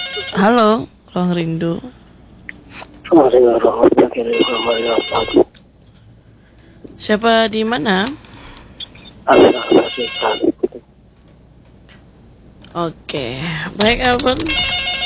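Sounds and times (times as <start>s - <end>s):
telephone on a radio call-in line ringing in short electronic bursts: 0.0s - 0.6s, 3.4s - 5.5s, 9.2s - 10.8s, 13.8s - 15.0s
speech: 0.2s - 2.0s, 2.7s - 5.4s, 7.0s - 8.2s, 9.3s - 10.5s, 12.7s - 14.8s
man talking over the telephone line: 3.0s - 5.5s, 9.3s - 10.8s.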